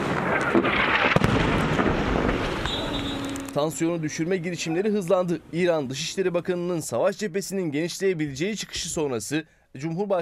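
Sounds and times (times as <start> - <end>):
artillery fire from shelling in the evening: 0.0 - 3.6
sharp bangs of artillery shelling: 0.0 - 4.6
speech: 3.6 - 10.1.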